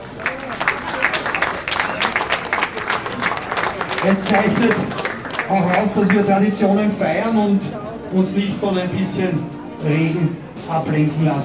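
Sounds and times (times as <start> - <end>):
audience applause: 0.0 - 6.6
speech: 4.0 - 11.4.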